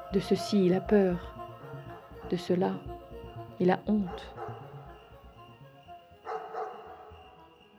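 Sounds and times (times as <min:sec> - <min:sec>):
speech: 0:00.1 - 0:01.3, 0:02.3 - 0:02.9, 0:03.6 - 0:04.4
low murmuring sound: 0:00.1 - 0:05.4
hunting hounds barking: 0:01.0 - 0:05.5, 0:06.2 - 0:07.4.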